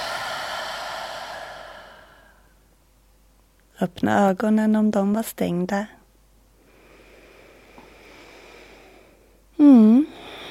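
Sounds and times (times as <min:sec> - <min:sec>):
long deep exhale through the mouth: 0:00.0 - 0:02.6, 0:06.6 - 0:10.4
speech: 0:03.8 - 0:06.0.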